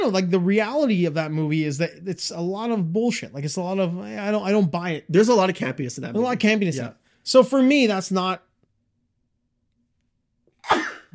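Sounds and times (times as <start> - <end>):
speech: 0.0 - 8.5
person sneezing after sniffing pepper: 10.6 - 11.1.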